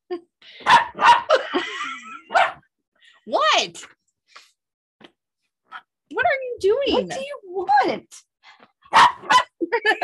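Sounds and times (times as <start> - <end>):
female dog barking excitedly: 0.6 - 1.3, 2.3 - 2.7, 8.8 - 10.0
laughter: 1.3 - 2.4, 9.6 - 10.0
female dog whiny yelp: 2.3 - 2.6, 8.9 - 10.0
speech: 3.6 - 4.0, 6.8 - 8.3.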